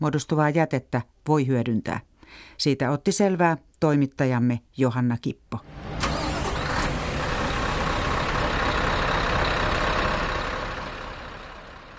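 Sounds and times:
speech: 0.0 - 6.0
truck engine rumbling: 5.6 - 11.9.

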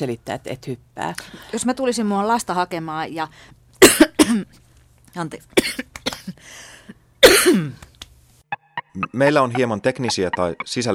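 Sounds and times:
speech: 0.0 - 4.6, 5.2 - 7.9, 9.0 - 10.9
person coughing: 3.8 - 4.6, 5.6 - 6.4, 7.2 - 7.8.

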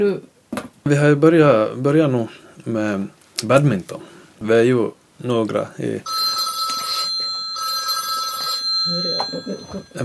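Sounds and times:
speech: 0.0 - 0.3, 0.9 - 6.2, 8.9 - 10.0
mobile phone ringing: 6.1 - 10.0.

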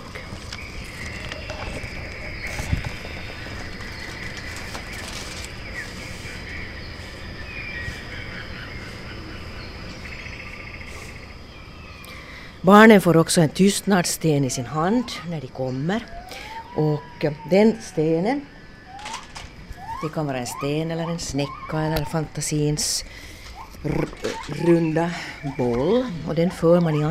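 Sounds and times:
rainforest bird calls: 0.0 - 12.6, 14.6 - 27.1
rainforest insects buzzing and chirping: 0.0 - 27.1
speech: 12.6 - 18.5, 20.0 - 27.1.

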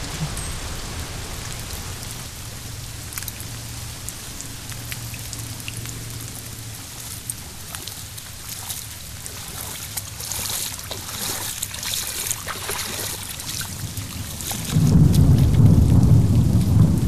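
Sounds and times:
low constant hum: 0.0 - 17.0
rain drops pattering on a surface: 0.0 - 17.0.

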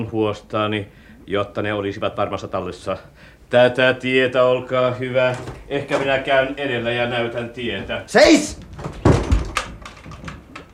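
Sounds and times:
speech: 0.0 - 8.9
door thudding shut: 8.7 - 10.3.

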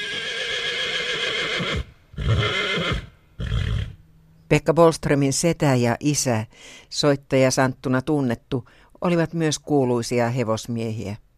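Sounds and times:
horse neighing: 0.0 - 4.0
speech: 4.5 - 11.2.

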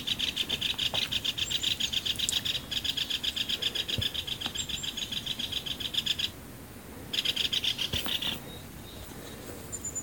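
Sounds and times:
Great Spotted Woodpeckers quarrelling at a fat feeder in frost: 0.0 - 6.4, 7.1 - 8.6.

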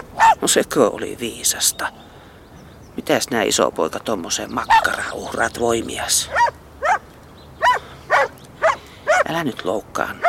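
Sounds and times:
faint steady noise: 0.0 - 10.2
dog barking: 0.2 - 0.4, 6.3 - 7.0, 7.6 - 9.3
speech: 0.4 - 2.2, 3.0 - 6.6, 9.3 - 10.2.

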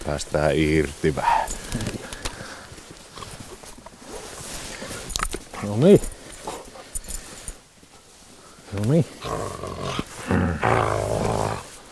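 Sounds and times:
speech: 0.1 - 1.9, 5.7 - 6.2, 8.8 - 10.8
dog growling: 9.2 - 11.7.

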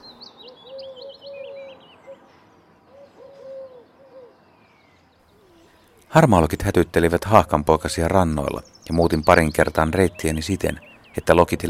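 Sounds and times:
smaller birds chirping and twittering: 0.0 - 11.6
Eurasian collared dove cooing a three-note phrase in alders: 0.4 - 2.2, 2.9 - 4.4, 5.3 - 6.0
speech: 6.1 - 11.6.

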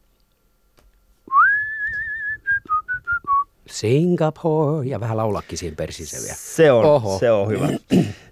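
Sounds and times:
person whistling a short tune: 1.3 - 3.5
speech: 3.7 - 8.3.

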